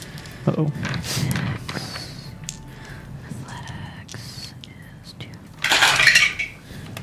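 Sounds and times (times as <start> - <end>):
soft whispery voices: 0.0 - 5.7
dice rolling in a dice tray in a game: 5.6 - 6.6.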